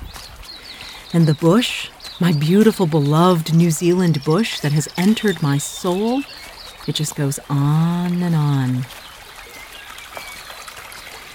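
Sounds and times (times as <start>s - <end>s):
rushing of the Hurunui River and streams in the New Zealand bush: 0.0s - 11.3s
speech: 1.1s - 9.0s.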